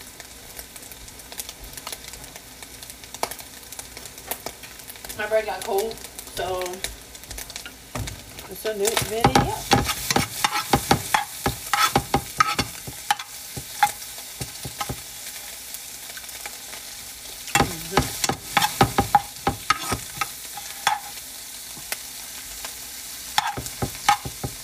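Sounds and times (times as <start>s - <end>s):
eggs frying on a stove: 0.0s - 24.6s
speech: 5.2s - 7.0s, 8.5s - 9.8s
stirring clicks and scrapes: 8.4s - 15.0s, 17.5s - 21.2s, 23.4s - 24.6s.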